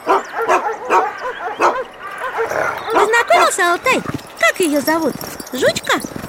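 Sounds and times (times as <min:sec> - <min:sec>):
large chained guard dog barking: 0:00.0 - 0:04.1
speech: 0:03.6 - 0:06.1.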